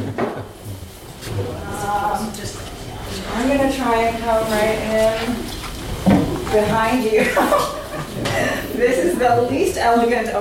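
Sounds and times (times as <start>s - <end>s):
laughter: 0.0s - 0.6s, 7.1s - 9.7s
chair scraping and bumping across a hard floor: 1.1s - 9.4s
speech: 3.4s - 5.5s, 6.5s - 7.8s, 8.4s - 10.3s.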